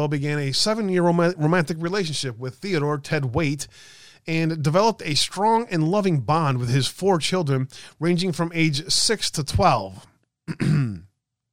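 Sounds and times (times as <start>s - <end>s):
speech: 0.0s - 11.1s
person clearing throat: 10.5s - 11.2s.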